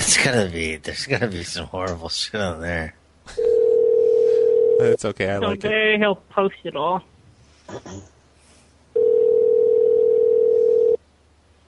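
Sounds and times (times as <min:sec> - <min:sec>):
speech: 0:00.2 - 0:03.5, 0:04.8 - 0:07.1, 0:07.7 - 0:08.1
telephone dial tone from receiver left off the hook: 0:03.5 - 0:04.8, 0:09.0 - 0:11.0.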